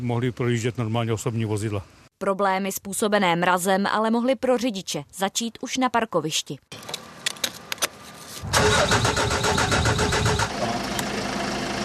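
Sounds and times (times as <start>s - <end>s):
speech: 0.0s - 6.9s
car engine struggling to start: 8.4s - 11.8s.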